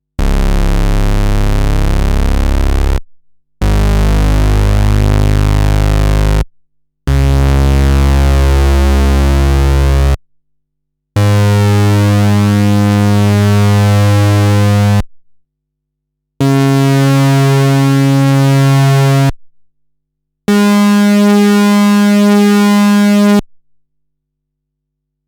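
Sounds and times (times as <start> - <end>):
modular synthesizer bass on iOS: 0.2 - 3.0, 3.6 - 6.5, 7.1 - 10.2, 11.2 - 15.0, 16.4 - 19.3, 20.5 - 23.4.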